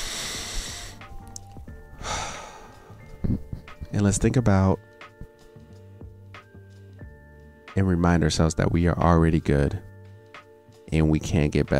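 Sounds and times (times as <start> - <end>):
person taking a deep breath: 0.0 - 1.1, 2.0 - 3.1
speech: 3.9 - 4.9, 7.8 - 9.9, 10.9 - 11.7.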